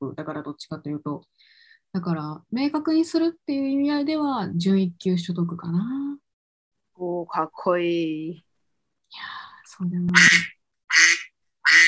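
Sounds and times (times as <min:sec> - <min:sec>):
speech: 0:00.0 - 0:06.2, 0:07.0 - 0:08.5, 0:09.1 - 0:11.1
loud raspy duck quacking: 0:10.1 - 0:11.8.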